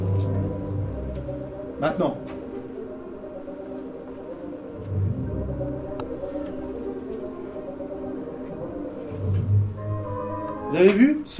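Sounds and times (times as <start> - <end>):
bassoons playing a classical symphonic passage: 0.0 - 11.3
speech: 1.8 - 2.4, 10.8 - 11.3.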